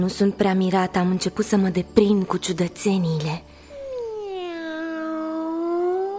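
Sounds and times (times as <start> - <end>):
speech: 0.0 - 3.6
cat meowing: 3.8 - 6.1.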